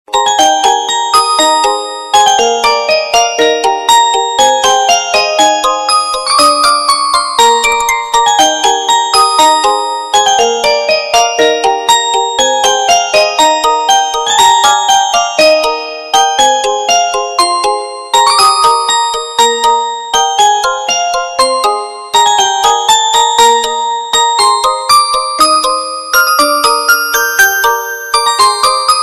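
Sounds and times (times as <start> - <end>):
cute ringtone melody: 0.1 - 29.0.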